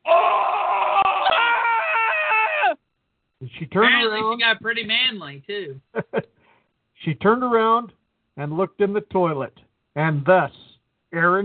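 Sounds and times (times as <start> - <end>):
woman screaming in pain: 0.0 - 2.8
speech: 3.6 - 6.2, 7.0 - 11.4.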